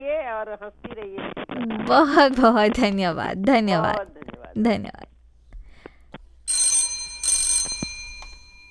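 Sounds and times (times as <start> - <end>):
speech: 0.4 - 1.2, 1.9 - 5.0
telephone bell ringing, bright and jangling: 6.5 - 8.6.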